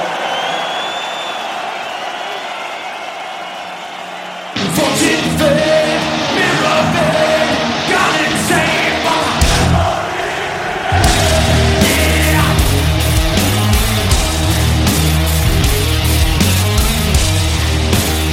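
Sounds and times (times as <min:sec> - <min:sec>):
large concert crowd yelling and cheering loudly: 0:00.0 - 0:18.3
booming amplified sound from the PA system: 0:10.9 - 0:14.8.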